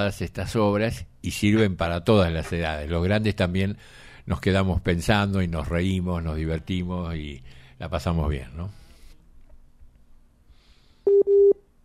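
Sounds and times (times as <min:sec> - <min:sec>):
speech: 0:00.0 - 0:08.8
low telephone line beeps on a radio call: 0:11.1 - 0:11.6.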